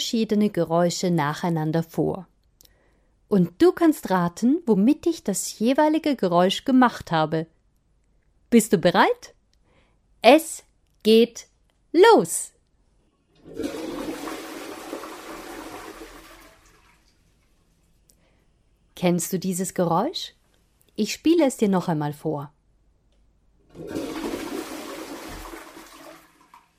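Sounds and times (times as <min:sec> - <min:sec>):
speech: 0:00.0 - 0:02.3, 0:03.3 - 0:07.6, 0:08.5 - 0:09.4, 0:10.2 - 0:12.5, 0:13.5 - 0:14.0, 0:19.0 - 0:20.4, 0:21.0 - 0:22.6, 0:23.8 - 0:24.2
toilet flushing: 0:13.4 - 0:17.2, 0:23.7 - 0:26.7.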